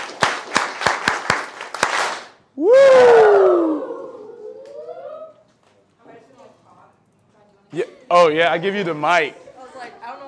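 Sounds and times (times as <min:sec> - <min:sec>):
audience doing a rhythmic camp clap: 0:00.0 - 0:02.4
scattered applause: 0:00.0 - 0:03.8
speech: 0:08.2 - 0:09.4.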